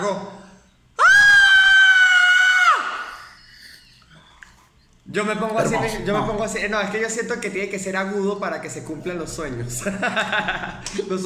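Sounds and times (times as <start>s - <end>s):
speech: 0.0s - 0.4s, 5.2s - 11.2s
faint noise: 0.0s - 11.2s
high-pitched scream: 1.0s - 3.6s
laughter: 9.7s - 11.0s.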